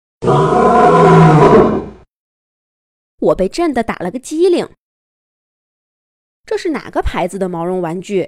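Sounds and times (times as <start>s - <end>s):
lion roaring: 0.2s - 2.0s
speech: 3.2s - 4.8s, 6.5s - 8.2s.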